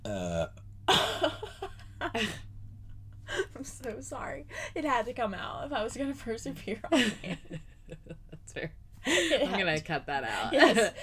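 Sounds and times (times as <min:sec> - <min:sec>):
person burping: 0:00.0 - 0:01.1
speech: 0:02.2 - 0:02.4, 0:04.0 - 0:07.7, 0:08.6 - 0:08.8, 0:09.4 - 0:11.0.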